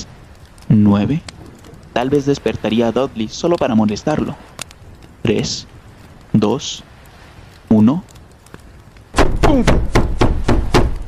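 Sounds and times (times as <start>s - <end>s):
speech: 0.7s - 1.3s, 2.0s - 4.5s, 5.2s - 6.9s, 7.7s - 8.1s, 9.5s - 9.9s
loud pounding knocks on a wooden cabin door: 9.2s - 11.0s.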